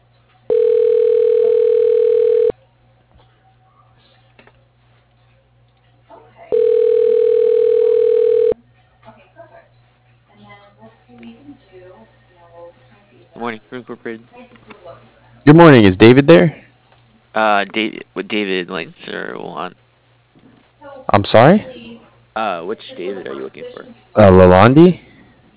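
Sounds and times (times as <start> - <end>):
telephone tones on an office line during extension dialing: 0.5 - 2.5, 6.5 - 8.6
speech: 13.9 - 16.6, 17.4 - 19.8, 21.1 - 21.7, 22.4 - 25.1.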